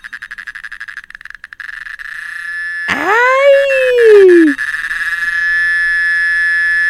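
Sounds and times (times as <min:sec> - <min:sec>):
cicada buzzing: 0:00.2 - 0:06.8
person exclaiming: 0:02.9 - 0:04.6.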